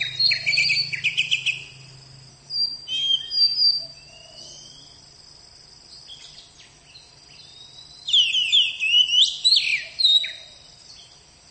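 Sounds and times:
Oriental magpie-robin song of buzzy trills and whistled phrases: 0:00.0 - 0:01.8, 0:02.5 - 0:04.8, 0:06.1 - 0:10.5.

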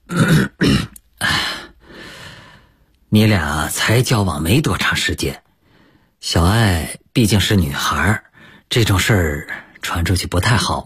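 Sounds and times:
man clearing his throat: 0:00.0 - 0:01.0
breathy exhale: 0:01.2 - 0:02.8
speech: 0:03.1 - 0:05.4, 0:06.2 - 0:10.8.

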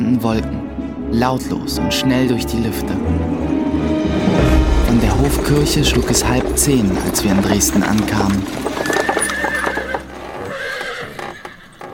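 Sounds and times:
speech: 0:00.1 - 0:03.4, 0:04.4 - 0:08.9
horses' hooves clip-clopping: 0:04.4 - 0:11.9
horses neighing and whinnying: 0:05.2 - 0:11.9.

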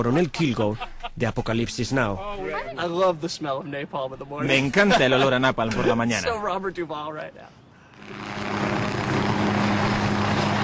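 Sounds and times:
speech: 0:00.0 - 0:08.6
old Vietnam-era Loach helicopter engine and rotor: 0:07.9 - 0:10.6.

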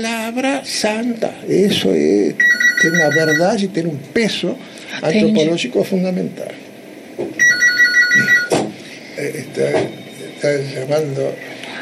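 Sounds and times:
speech: 0:00.0 - 0:07.4, 0:09.2 - 0:11.5
telephone ringing with a rapid electronic trill: 0:02.4 - 0:03.6, 0:07.4 - 0:08.6.

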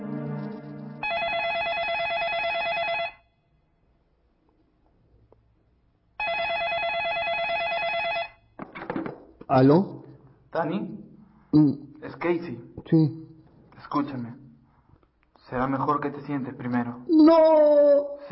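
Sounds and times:
telephone ringing in an apartment: 0:00.0 - 0:03.3, 0:06.2 - 0:08.5
speech: 0:09.5 - 0:13.2, 0:13.9 - 0:14.4, 0:15.5 - 0:18.3.

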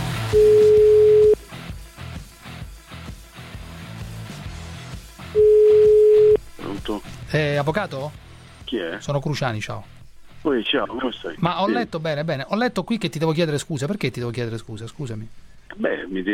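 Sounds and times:
telephone line tone while placing a phone call: 0:00.3 - 0:01.4, 0:05.4 - 0:06.4
speech: 0:07.3 - 0:16.3.

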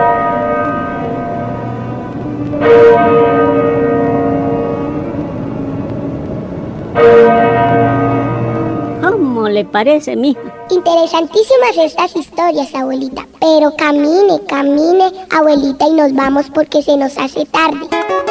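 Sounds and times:
parish church bell tolling: 0:00.0 - 0:13.2
speech: 0:09.7 - 0:18.0.

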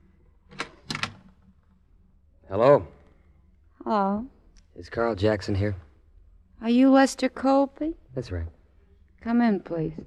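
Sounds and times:
door latch click: 0:00.5 - 0:01.3
speech: 0:02.5 - 0:02.9, 0:03.9 - 0:05.9, 0:06.6 - 0:08.6, 0:09.2 - 0:10.0.

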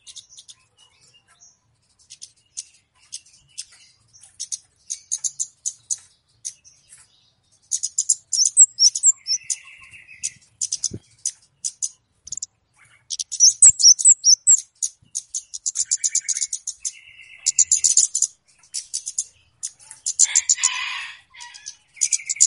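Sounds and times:
flowerpecker lure calls: 0:07.7 - 0:22.4.

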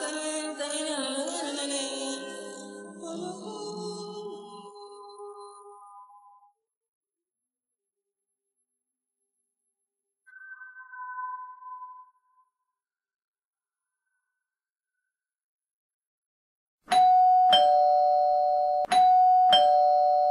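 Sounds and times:
two-tone doorbell chime: 0:16.9 - 0:20.2.

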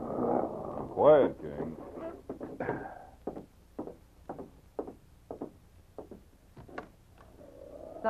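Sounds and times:
speech: 0:01.0 - 0:01.9
soft hesitant knocking on a wooden door: 0:01.6 - 0:06.9.

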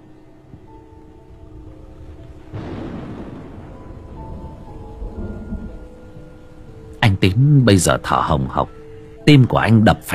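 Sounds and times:
quiet rain hissing during a storm with lightning: 0:00.0 - 0:09.2
low rolling rumble of thunder: 0:00.5 - 0:07.0
speech: 0:07.2 - 0:10.1.

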